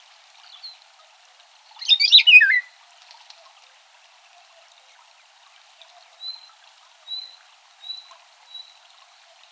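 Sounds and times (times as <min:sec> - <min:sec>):
Eurasian golden oriole Oriolus oriolus alarm call: 0:01.8 - 0:02.6.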